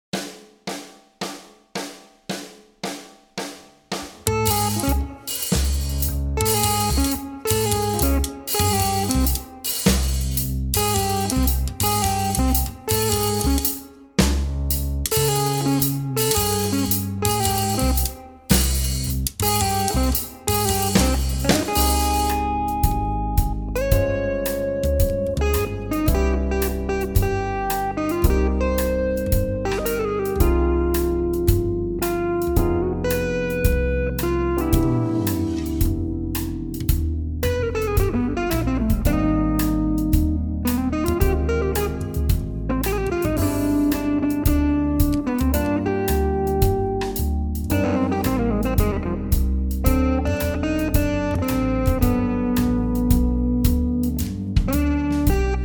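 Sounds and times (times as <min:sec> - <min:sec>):
improvised guitar playing: 0:04.3 - 0:55.6.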